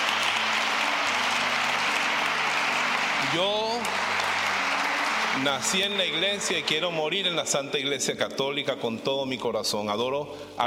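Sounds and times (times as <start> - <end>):
crowd applauding: 0.0 - 7.9
speech: 3.3 - 4.0, 5.4 - 10.6.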